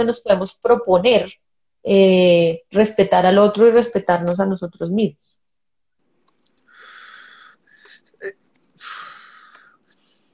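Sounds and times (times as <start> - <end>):
speech: 0.0 - 5.4, 8.2 - 8.4
long slow deep breaths: 6.6 - 10.3.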